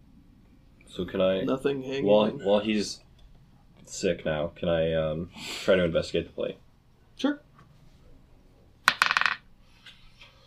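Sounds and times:
speech: 0.9s - 3.1s, 3.9s - 6.6s, 7.2s - 7.4s
small dice rolled across a tabletop during a tabletop role-playing game: 8.8s - 9.5s.

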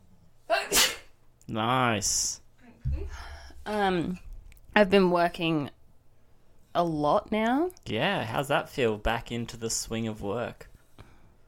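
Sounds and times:
person sneezing: 0.5s - 1.2s
speech: 1.5s - 5.8s, 6.8s - 10.7s.

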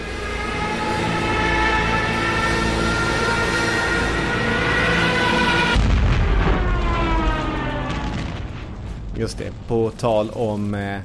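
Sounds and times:
Stuka dive bomber siren wailing: 0.0s - 8.8s
rumbling battle explosions: 3.2s - 11.0s
heavy blast: 3.8s - 9.9s
speech: 9.2s - 11.0s.

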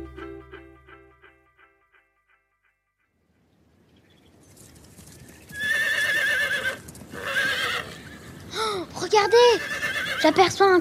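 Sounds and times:
horse galloping with rapid hoofbeats: 4.3s - 10.8s
horse letting out loud shrill whinnies: 5.5s - 8.5s, 9.1s - 10.5s.

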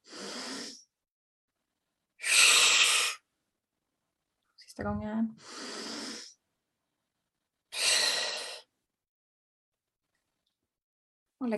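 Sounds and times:
deep inhale through the nose in a breathing exercise: 0.0s - 0.9s, 2.2s - 3.2s, 5.4s - 6.4s, 7.8s - 8.7s
speech: 4.8s - 5.6s.

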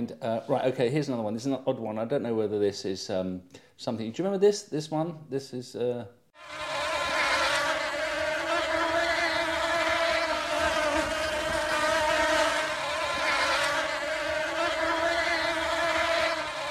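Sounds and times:
speech: 0.0s - 6.7s
dense swarm of bees buzzing: 6.4s - 16.6s.

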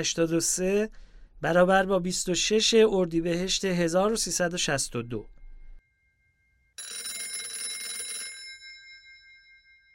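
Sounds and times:
speech: 0.0s - 5.4s
loud bright telephone bell ringing: 5.9s - 9.9s.

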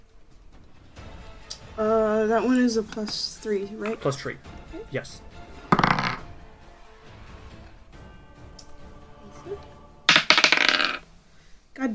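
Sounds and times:
speech: 1.8s - 5.3s
dice clattering across a hard tabletop: 5.7s - 6.2s, 10.1s - 11.0s.

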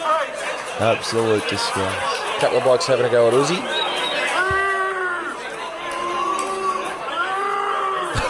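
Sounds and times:
crowd booing: 0.0s - 8.2s
laughter: 0.5s - 8.2s
speech: 0.8s - 4.3s
scattered shouts in a crowd: 3.6s - 8.2s.

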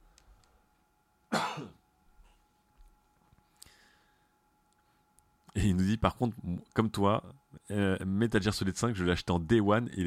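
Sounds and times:
person coughing harshly: 1.3s - 1.8s
speech: 5.6s - 10.0s.

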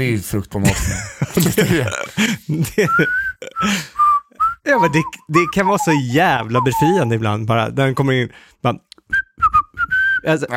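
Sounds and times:
speech: 0.0s - 3.9s, 4.7s - 9.1s, 10.2s - 10.5s
laughter: 0.6s - 3.9s
person whistling a tune: 2.9s - 7.1s, 9.1s - 10.3s.

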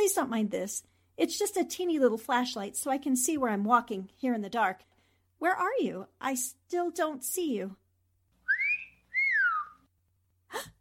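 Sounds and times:
speech: 0.1s - 7.8s
man wolf whistling at a woman: 8.4s - 9.9s.

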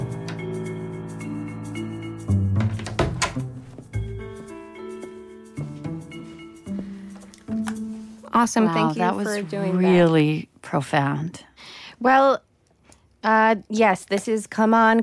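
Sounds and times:
closet door swinging and shutting with dull wooden knocks: 2.4s - 3.8s
speech: 8.4s - 12.4s, 13.2s - 15.0s.

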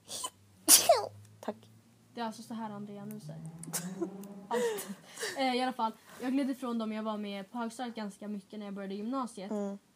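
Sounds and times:
person sneezing: 0.0s - 1.1s
faint steady hum: 0.0s - 9.9s
speech: 2.2s - 9.9s
laughter: 3.7s - 5.5s.

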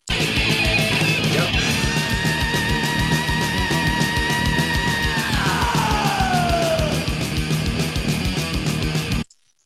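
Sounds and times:
loud dense heavy music: 0.1s - 9.1s
long sustained high-pitched human scream in a song: 1.6s - 7.2s.

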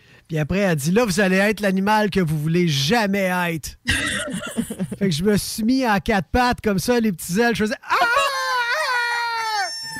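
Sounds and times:
speech: 0.3s - 8.0s
laughter: 3.9s - 5.1s
person on all fours imitating a rooster crowing: 7.9s - 9.9s.

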